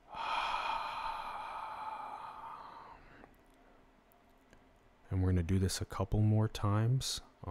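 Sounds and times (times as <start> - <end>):
deep breath exhaled during a guided relaxation exercise: 0.0 - 3.3
speech: 5.2 - 7.4.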